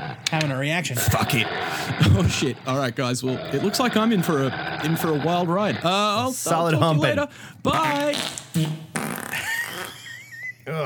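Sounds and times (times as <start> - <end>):
speech: 0.3 - 8.8
loud sputtering squeaky fart: 1.0 - 6.1, 7.8 - 10.2.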